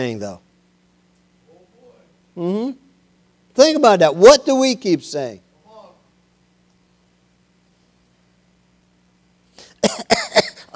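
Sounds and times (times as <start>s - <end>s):
speech: 0.0s - 0.5s, 2.4s - 2.8s, 3.6s - 5.4s, 10.0s - 10.4s
person coughing with harsh hacks: 9.6s - 10.7s.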